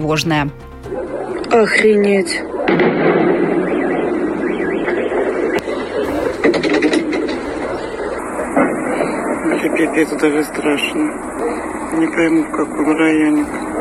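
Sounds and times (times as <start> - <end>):
speech: 0.0 - 3.0, 9.6 - 13.7
steady roar of noise: 0.0 - 13.8
explosions from a drone attack on a military base area: 2.6 - 10.7.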